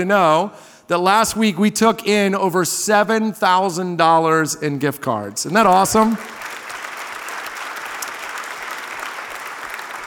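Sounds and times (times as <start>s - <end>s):
speech: 0.0s - 6.4s
large church audience applauding: 5.6s - 10.0s.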